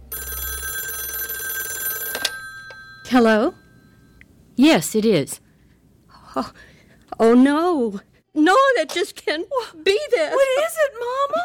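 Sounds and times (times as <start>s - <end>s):
telephone ringing at night: 0.0s - 4.2s
speech: 3.1s - 3.6s, 4.6s - 5.4s, 6.4s - 11.4s.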